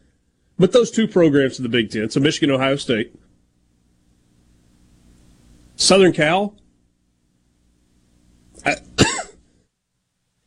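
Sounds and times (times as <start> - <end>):
speech: 0.6 - 3.3, 5.8 - 6.6, 8.6 - 9.0
harsh coughs: 8.6 - 9.6.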